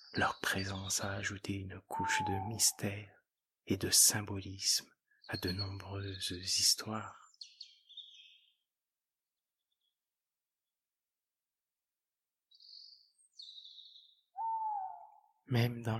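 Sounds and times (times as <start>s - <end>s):
speech: 0.1s - 7.2s, 15.5s - 15.9s
owl calls in a night forest: 1.9s - 2.9s, 13.4s - 15.4s.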